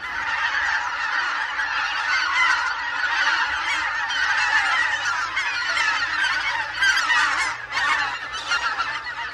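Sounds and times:
flock of greater white-fronted geese calling in flight in winter: 0.0s - 9.3s.

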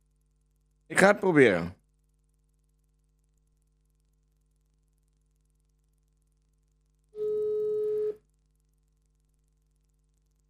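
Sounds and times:
faint hum: 0.0s - 10.4s
speech: 0.9s - 1.8s
telephone ringback tone on speakerphone: 7.2s - 8.2s.

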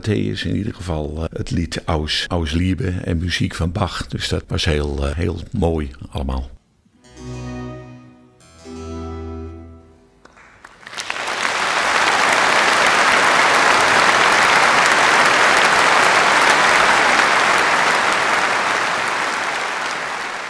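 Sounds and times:
speech: 0.0s - 6.6s
final sustained musical chord: 7.0s - 10.2s
large audience applause after a concert: 10.3s - 20.4s.

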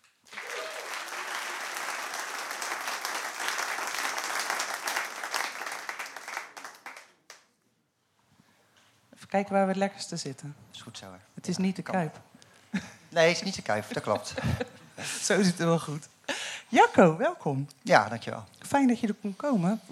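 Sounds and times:
audience applause: 0.0s - 7.4s
speech: 9.3s - 16.1s, 16.7s - 19.8s
laughter: 13.8s - 15.5s.

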